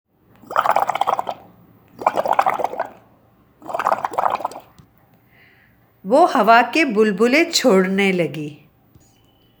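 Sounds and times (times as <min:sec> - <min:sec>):
water splashing from jumping: 0:00.4 - 0:03.0, 0:03.6 - 0:04.8
speech: 0:06.1 - 0:08.6.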